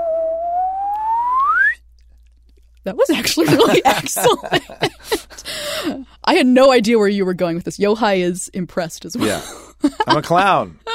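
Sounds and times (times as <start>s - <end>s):
slide whistle upward glide: 0.0s - 1.8s
speech: 2.8s - 10.9s
laughter: 3.2s - 5.8s, 9.2s - 10.9s.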